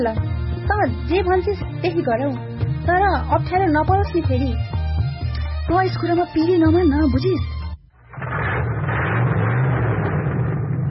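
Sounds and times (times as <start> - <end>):
speech: 0.0 - 4.7, 5.7 - 7.5
car engine approaching on the road: 8.1 - 10.8.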